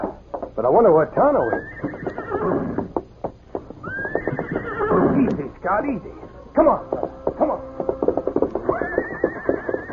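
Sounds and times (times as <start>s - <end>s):
speech: 0.0s - 2.7s, 5.7s - 7.0s
paint horse hooves pawing the ground: 0.0s - 9.9s
agitated paint horse whinnying and rearing: 1.3s - 3.0s, 3.8s - 5.5s, 6.8s - 9.9s.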